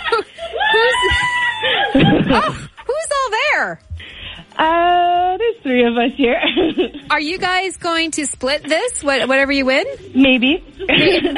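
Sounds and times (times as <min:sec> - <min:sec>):
people laughing: 0:00.0 - 0:02.8, 0:06.2 - 0:07.1, 0:10.8 - 0:11.3
coworkers yelling and shrieking: 0:00.4 - 0:02.6
speech: 0:02.0 - 0:02.7, 0:04.6 - 0:11.3.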